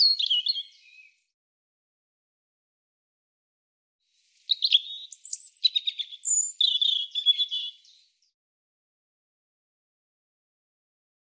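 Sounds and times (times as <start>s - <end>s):
European robin song: 0.0s - 1.3s, 4.2s - 8.3s.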